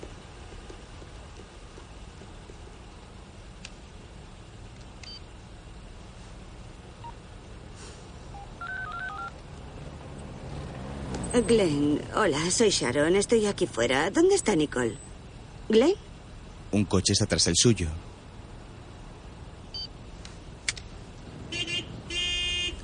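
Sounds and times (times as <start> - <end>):
steady hiss: 0.0 - 22.8
touch-tone beeps of a telephone being dialed: 8.4 - 9.3
speech: 11.4 - 15.0, 15.7 - 16.1, 16.7 - 18.1.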